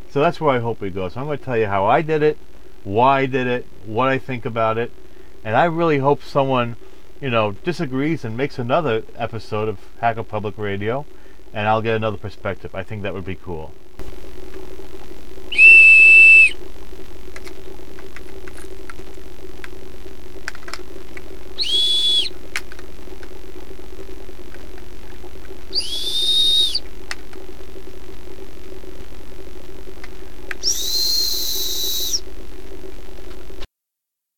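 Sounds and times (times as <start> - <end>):
low electrical hum: 0.0 - 33.7
speech: 0.1 - 13.8
whistled tones played as a frequency demonstration: 15.5 - 16.6, 21.6 - 22.3, 25.7 - 26.8, 30.6 - 32.2.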